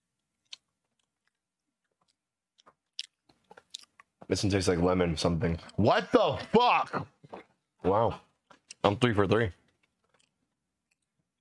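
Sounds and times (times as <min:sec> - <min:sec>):
chewing booger-flavored candy with crunches and wet smacking: 0:00.1 - 0:04.2, 0:08.4 - 0:08.9, 0:09.7 - 0:11.3
speech: 0:04.3 - 0:07.2, 0:07.8 - 0:09.6.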